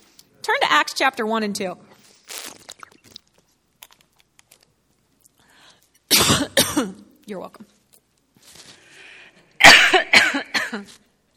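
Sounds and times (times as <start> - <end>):
speech: 0.8 - 1.9, 6.8 - 7.7, 10.7 - 11.0
faint breathing: 5.4 - 6.0, 8.6 - 9.6
coughing from a tickle in the throat: 6.1 - 7.0, 9.6 - 10.9.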